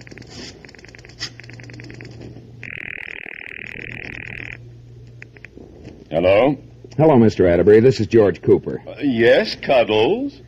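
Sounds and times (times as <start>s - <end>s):
telephone steady buzzing tone: 0.0s - 4.8s
low hum: 0.0s - 10.4s
speech: 6.1s - 10.4s.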